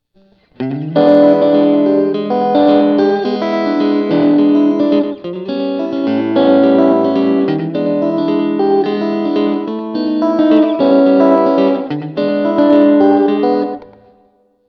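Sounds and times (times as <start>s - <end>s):
60's tweed amp tone from a Boss GT-8 processor: 0.0s - 14.6s.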